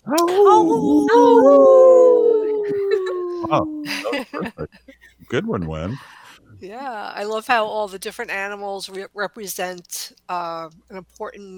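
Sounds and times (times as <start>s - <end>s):
people howling like wolves: 0.0s - 4.7s
speech: 0.1s - 1.8s, 3.4s - 11.5s
laughter: 2.6s - 6.3s.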